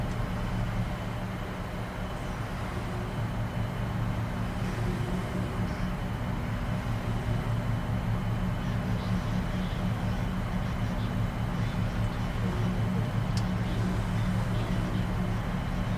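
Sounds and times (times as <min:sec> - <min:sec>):
faint tonal drone: 0:00.0 - 0:15.9
shuttle cabin engine hum and rumble: 0:00.0 - 0:15.9
soft indistinct voices in a shuttle cabin: 0:08.2 - 0:15.9.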